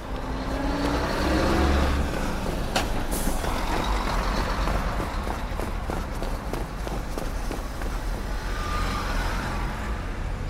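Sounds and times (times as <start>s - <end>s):
footsteps: 0.0s - 8.3s
Honda car passing by: 0.0s - 10.4s
busy street traffic rumbling: 0.0s - 10.4s.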